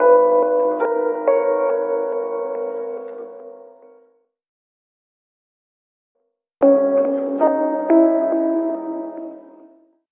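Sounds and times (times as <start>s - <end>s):
sad piano music loop: 0.0s - 4.0s, 6.6s - 9.9s.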